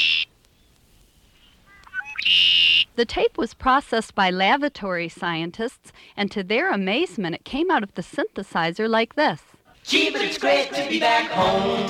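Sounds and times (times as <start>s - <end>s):
red-winged blackbird calling: 0.0s - 2.9s
speech: 3.0s - 11.8s.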